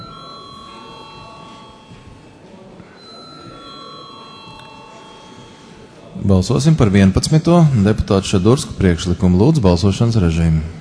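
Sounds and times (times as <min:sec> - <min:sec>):
parliament voting call bell ringing in a large chamber: 0:00.0 - 0:02.3, 0:03.0 - 0:06.1
low murmur of room noise: 0:00.0 - 0:10.8
speech: 0:06.2 - 0:10.8.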